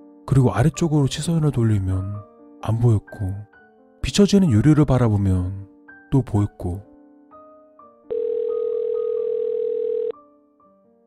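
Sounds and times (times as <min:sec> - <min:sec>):
speech: 0:00.3 - 0:06.9
phone ringback tone of unanswered call: 0:08.1 - 0:10.2.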